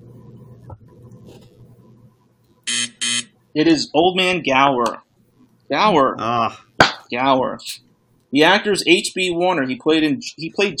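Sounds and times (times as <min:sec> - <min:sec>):
quiet low hum: 0:00.0 - 0:04.1
harsh quiz show buzzer blast: 0:02.6 - 0:03.4
speech: 0:03.6 - 0:05.0, 0:05.7 - 0:10.7.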